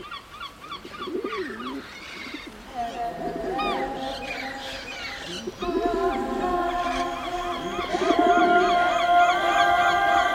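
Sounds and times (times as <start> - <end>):
birds chirping and warbling outdoors: 0.0 - 10.2.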